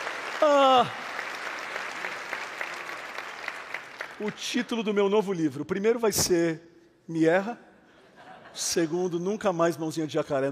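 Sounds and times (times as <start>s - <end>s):
congregation applauding during a church worship service: 0.0s - 5.2s
speech: 0.4s - 1.0s, 4.2s - 7.7s, 8.6s - 10.5s
laughter: 7.9s - 9.2s.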